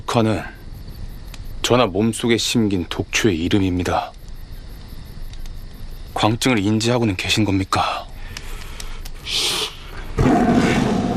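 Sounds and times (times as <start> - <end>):
brief hissy rush of noise: 0.0 - 11.1
speech: 0.1 - 0.6, 1.6 - 4.2, 6.2 - 8.1, 9.2 - 9.6
loud rumbling tiger roar: 10.2 - 11.1.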